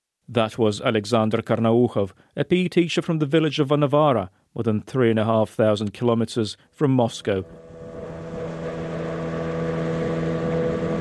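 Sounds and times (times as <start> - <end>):
speech: 0.3 - 7.6
boat motor droning on a river: 7.4 - 11.0.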